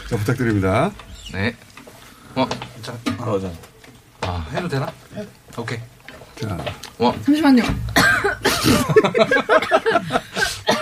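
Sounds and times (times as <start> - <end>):
speech: 0.1 - 1.7, 2.3 - 3.7, 4.3 - 10.6
person coughing in harsh bursts: 8.0 - 9.0, 9.6 - 10.8
laughter: 8.1 - 10.8.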